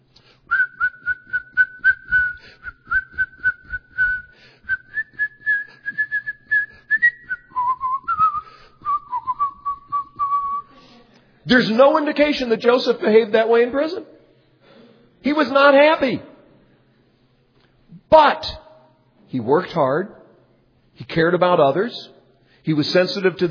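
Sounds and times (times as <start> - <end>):
bright bouncy whistled melody: 0.5 - 10.7
speech: 11.5 - 14.1, 15.4 - 16.3, 18.2 - 18.6, 19.3 - 20.2, 21.2 - 23.4.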